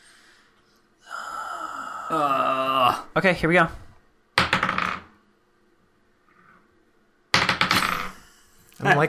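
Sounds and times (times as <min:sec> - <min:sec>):
speech: 0:02.1 - 0:03.8, 0:08.9 - 0:09.0
red dice clattering and tumbling across a tabletop: 0:04.4 - 0:05.1, 0:07.4 - 0:08.2.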